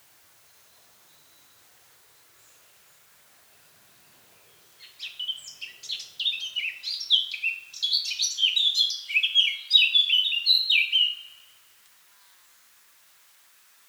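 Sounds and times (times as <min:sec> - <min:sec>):
Eurasian blackcap warbling song (Sylvia atricapilla): 0:04.8 - 0:11.4.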